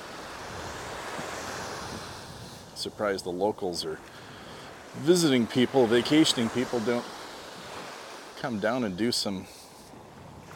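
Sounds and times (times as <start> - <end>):
wind noise: 0.0 - 3.4, 9.7 - 10.5
big ocean waves breaking on the shore after a storm: 0.0 - 10.5
speech: 2.8 - 4.2, 5.0 - 7.2, 8.4 - 9.6.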